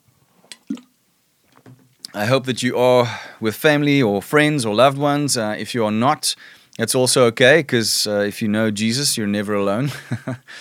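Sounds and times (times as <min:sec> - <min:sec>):
mouth click: 0:00.5 - 0:00.9
person sipping water: 0:00.5 - 0:00.9
speech: 0:02.2 - 0:10.6.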